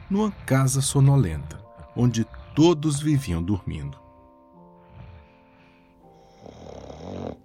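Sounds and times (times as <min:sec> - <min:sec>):
grandmother snoring: 0:00.0 - 0:02.8, 0:04.8 - 0:07.4
speech: 0:00.1 - 0:04.0.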